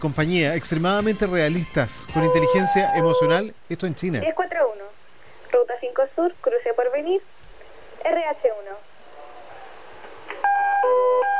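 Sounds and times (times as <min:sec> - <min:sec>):
speech: 0:00.0 - 0:04.8, 0:05.7 - 0:07.4, 0:08.0 - 0:08.9
fire department dispatch centre alarm system electronic alert tone: 0:02.1 - 0:03.4, 0:10.4 - 0:11.3.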